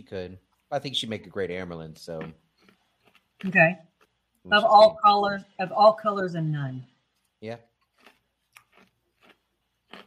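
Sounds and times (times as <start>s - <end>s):
speech: 0.1s - 2.4s, 3.4s - 7.7s
ice being chewed: 2.1s - 4.2s, 7.8s - 10.0s.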